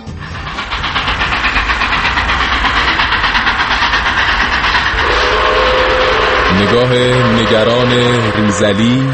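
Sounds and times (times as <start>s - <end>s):
train wheels clickety-clack on a railway at night: 0.0s - 9.1s
sustained train whistle: 5.0s - 9.1s
speech: 6.6s - 9.1s.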